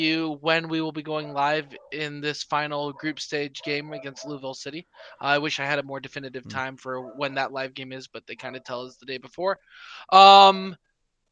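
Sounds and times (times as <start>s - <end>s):
speech: 0.0s - 10.8s
dog barking: 1.7s - 2.0s, 2.9s - 5.2s, 7.0s - 7.4s.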